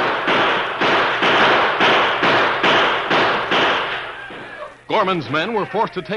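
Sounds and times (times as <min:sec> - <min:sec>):
six-gun revolver gunfire in a frontier shootout at a mountain pass: 0:00.0 - 0:04.2
speech: 0:04.9 - 0:06.1.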